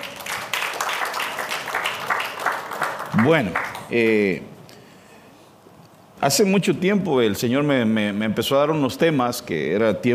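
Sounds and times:
crowd applauding: 0.0 - 4.2
speech: 3.2 - 4.5, 6.2 - 10.1.

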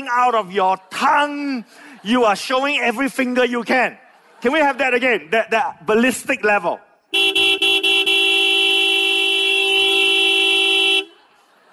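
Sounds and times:
speech: 0.1 - 6.9
laughter: 0.3 - 5.5, 10.8 - 11.7
car horn honking long and aggressively: 7.1 - 11.3.

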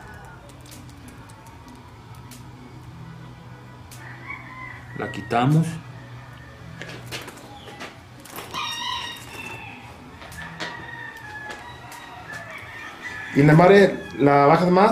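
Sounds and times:
rooster crowing over a noisy farmyard: 0.0 - 0.5, 4.0 - 7.0, 8.4 - 14.9
speech: 5.0 - 5.9, 13.4 - 14.9.

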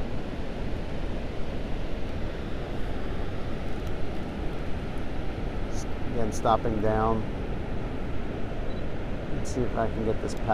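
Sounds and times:
ocean surf washing onto the shore of the Oregon coast: 0.0 - 10.5
speech: 6.2 - 7.4, 9.5 - 10.5.

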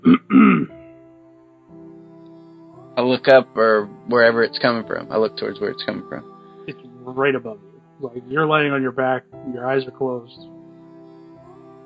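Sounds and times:
person clearing throat: 0.0 - 0.7
speech: 3.0 - 10.5.

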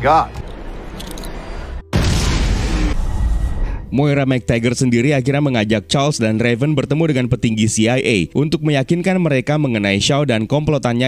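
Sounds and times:
speech: 0.0 - 0.4, 3.9 - 11.0
grenade explosion boom in a film scene: 1.8 - 4.0.

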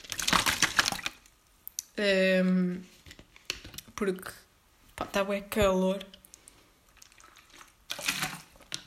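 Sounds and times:
water sloshing in large 1.5-litre plastic bottle: 0.0 - 1.3, 6.9 - 8.8
speech: 2.0 - 2.9, 4.0 - 4.4, 5.0 - 6.2.

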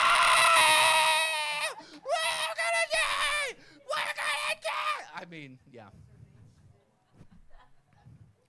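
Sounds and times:
voice imitating a woman screaming on a plane: 0.0 - 5.1
speech: 5.4 - 6.2.

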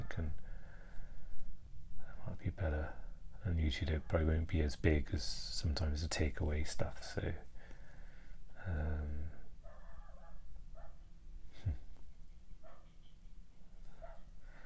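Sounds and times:
speech: 0.2 - 0.4, 2.5 - 7.5, 8.6 - 9.2
dog barking: 9.6 - 11.1, 12.6 - 13.0, 13.9 - 14.3.

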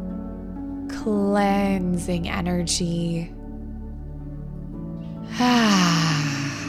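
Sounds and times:
speech: 1.0 - 3.4
loud voiced sighing exhale during a relaxation breathing exercise: 5.3 - 6.6.

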